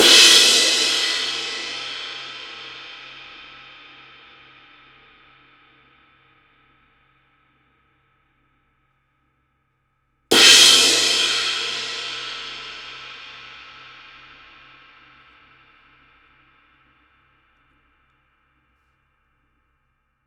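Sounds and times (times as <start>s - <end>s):
X-Series crash cymbal: 0.0s - 4.4s, 10.3s - 15.9s.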